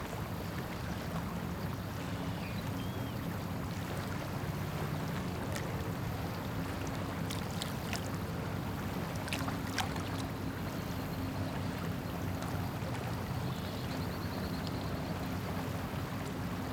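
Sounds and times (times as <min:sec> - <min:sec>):
lake ambience: 0:00.0 - 0:16.7.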